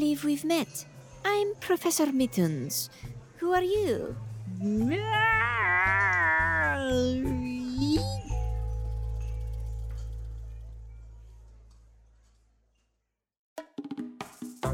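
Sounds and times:
speech: 0:00.0 - 0:06.0
person imitating cat meow: 0:04.6 - 0:08.0
low hum: 0:07.6 - 0:12.2.

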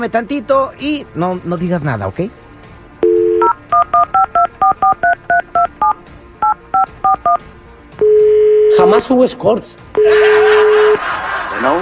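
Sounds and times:
speech: 0:00.0 - 0:02.4, 0:08.9 - 0:10.6, 0:11.6 - 0:11.7
steady telephone tone: 0:03.0 - 0:07.4, 0:08.0 - 0:09.0, 0:10.0 - 0:11.0
touch-tone DTMF keypad beeps dialing a telephone number: 0:03.0 - 0:07.4
laughter: 0:10.0 - 0:11.7.

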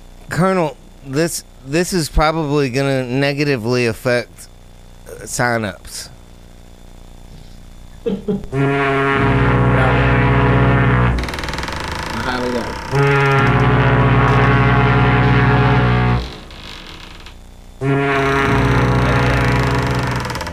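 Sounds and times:
speech: 0:00.4 - 0:04.5, 0:05.2 - 0:06.1, 0:08.0 - 0:10.0
ship's horn blasting aboard a boat on the water: 0:08.5 - 0:16.7, 0:17.8 - 0:20.5.

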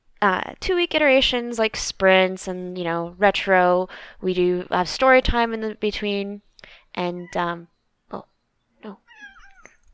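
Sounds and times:
speech: 0:00.2 - 0:09.0
cat meowing: 0:09.0 - 0:09.8.

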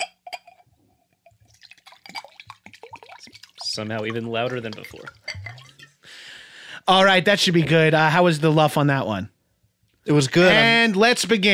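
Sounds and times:
water being drunk: 0:01.3 - 0:06.1
speech: 0:03.8 - 0:05.2, 0:06.9 - 0:09.4, 0:10.1 - 0:11.5.

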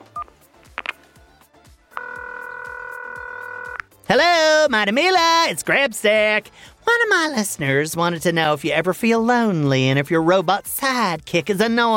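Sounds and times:
steady electronic telephone ring tone: 0:01.9 - 0:03.9
short keypad beep: 0:02.0 - 0:03.8
speech: 0:04.1 - 0:11.9.

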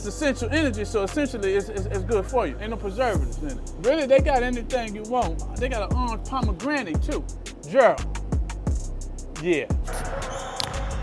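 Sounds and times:
speech: 0:00.0 - 0:08.2, 0:09.4 - 0:10.2
basketball dribbled on a court: 0:10.3 - 0:11.0.

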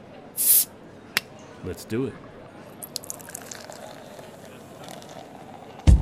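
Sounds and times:
bottle being popped open and fizzing: 0:00.4 - 0:00.7, 0:02.8 - 0:05.9
speech: 0:01.6 - 0:02.4.

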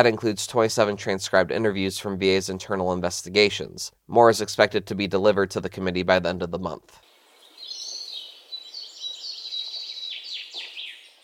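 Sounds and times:
speech: 0:00.0 - 0:07.1
bird chirps: 0:07.1 - 0:11.2.

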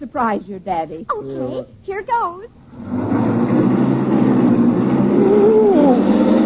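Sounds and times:
speech: 0:00.0 - 0:03.1, 0:05.3 - 0:05.8
car engine roaring as the car speeds away in low gear: 0:02.6 - 0:06.4.

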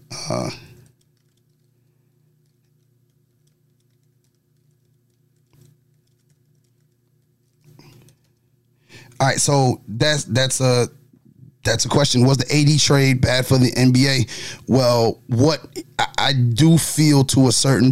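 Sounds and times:
speech: 0:00.3 - 0:00.7, 0:09.2 - 0:11.0, 0:11.6 - 0:17.9
typing on a computer keyboard: 0:00.7 - 0:01.8, 0:02.4 - 0:08.4.

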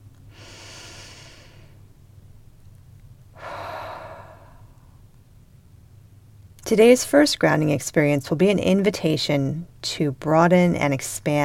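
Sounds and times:
deep breath: 0:00.3 - 0:01.8, 0:03.4 - 0:05.0
speech: 0:06.7 - 0:11.4.

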